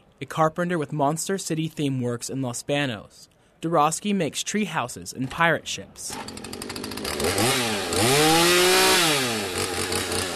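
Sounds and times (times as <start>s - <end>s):
speech: 0.2s - 8.3s
chainsaw cutting into wood: 6.1s - 10.3s.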